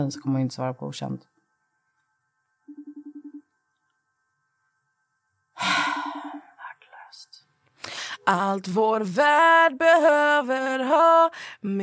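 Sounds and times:
speech: 0.0s - 1.4s, 8.3s - 11.8s
phone ringing tone on an outgoing call: 2.7s - 3.5s
loud rush of breathy noise: 5.6s - 7.1s.

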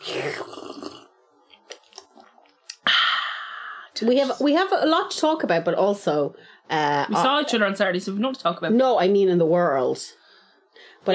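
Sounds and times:
person slurping tea: 0.0s - 2.9s
speech: 4.0s - 10.2s.

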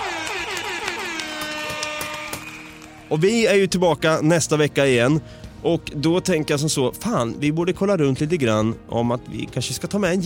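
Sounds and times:
air horn sound effect: 0.0s - 3.1s
speech: 3.1s - 10.2s.

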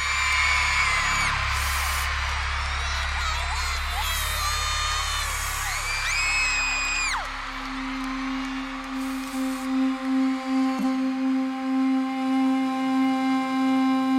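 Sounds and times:
high-pitched shrieks and whoops: 0.0s - 10.0s
young concert crowd screaming and cheering: 0.0s - 13.1s.

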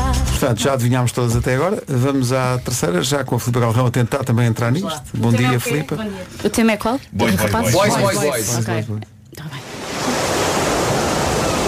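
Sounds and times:
speech: 0.4s - 9.7s
sea waves breaking: 9.6s - 11.6s.

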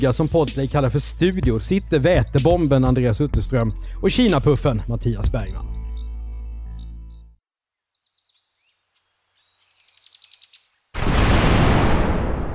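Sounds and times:
speech: 0.0s - 5.8s
faint birds chirping outdoors: 6.8s - 11.0s
massive dynamite explosion with deep roaring bang: 11.0s - 12.5s.

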